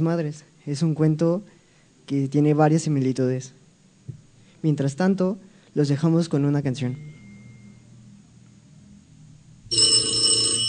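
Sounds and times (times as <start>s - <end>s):
speech: 0.0s - 3.6s, 4.6s - 7.1s
quiet low hum: 6.6s - 10.6s
telephone bell ringing: 9.7s - 10.6s.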